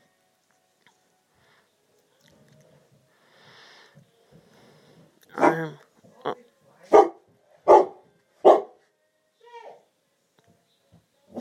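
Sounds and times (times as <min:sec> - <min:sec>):
dog barking: 0:05.3 - 0:05.8, 0:06.9 - 0:08.8.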